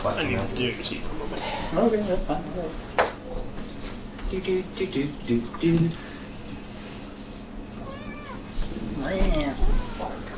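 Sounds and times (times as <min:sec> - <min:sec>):
speech: 0:00.0 - 0:03.0, 0:04.3 - 0:06.1, 0:09.0 - 0:09.6
steady hum: 0:00.0 - 0:10.3
cat meowing: 0:07.8 - 0:08.5, 0:09.4 - 0:10.3.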